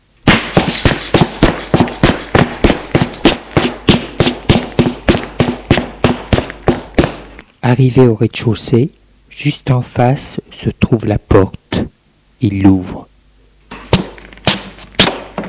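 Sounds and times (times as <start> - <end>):
footsteps descending wooden stairs: 0.3 - 7.4, 13.8 - 15.4
speech: 7.7 - 13.1.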